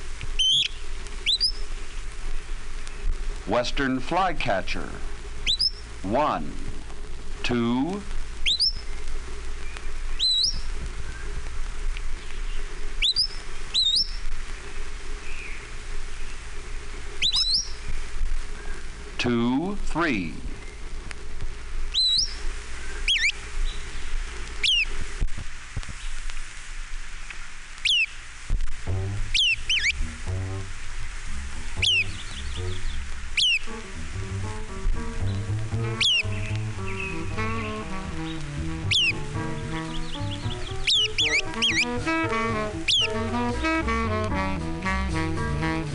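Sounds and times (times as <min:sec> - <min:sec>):
low rumble of mixed tones: 0:00.0 - 0:25.8, 0:28.3 - 0:45.9
MacGillivray's Warbler singing: 0:00.4 - 0:04.6, 0:05.4 - 0:06.5, 0:07.5 - 0:11.4, 0:12.2 - 0:14.3, 0:15.2 - 0:16.5, 0:17.2 - 0:19.8, 0:21.9 - 0:25.0, 0:27.8 - 0:28.2, 0:29.0 - 0:30.7, 0:31.3 - 0:45.9
speech: 0:03.5 - 0:05.1, 0:06.0 - 0:06.7, 0:07.5 - 0:08.2, 0:19.2 - 0:20.5.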